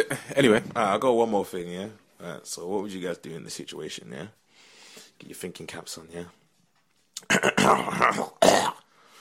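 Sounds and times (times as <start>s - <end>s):
speech: 0.0s - 4.4s, 5.2s - 6.4s, 7.2s - 8.8s
phlegmy cough: 7.2s - 8.8s
raspy throat clearing: 7.2s - 8.8s.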